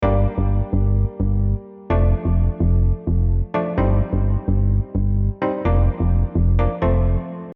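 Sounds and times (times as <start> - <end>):
simple bassline: 0.0 - 7.4
chords: 0.0 - 7.5.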